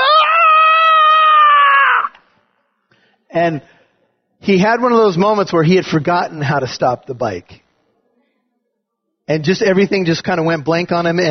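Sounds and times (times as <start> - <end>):
voice imitating a boy's distressed scream: 0.0 - 2.2
speech: 3.4 - 3.8, 4.4 - 7.6, 9.3 - 11.3.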